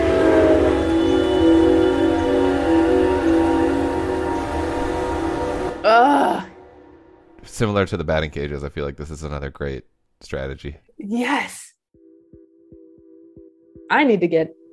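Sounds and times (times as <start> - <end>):
wavering vocal wail: 0.0 - 6.9
train passing: 0.0 - 8.3
speech: 7.6 - 11.6, 13.9 - 14.6.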